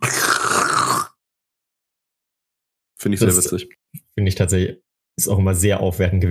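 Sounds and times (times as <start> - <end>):
vocal imitation of a dental saliva ejector slurping: 0.0 - 1.2
speech: 3.0 - 6.2.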